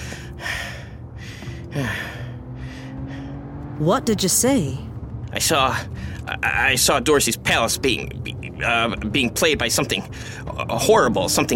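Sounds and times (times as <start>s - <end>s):
person panting to catch their breath: 0.0s - 3.5s
speech: 3.8s - 11.5s.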